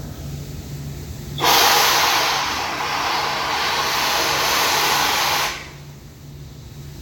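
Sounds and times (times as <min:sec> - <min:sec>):
machine burst: 0:01.4 - 0:05.9
steam from machines: 0:01.4 - 0:06.2.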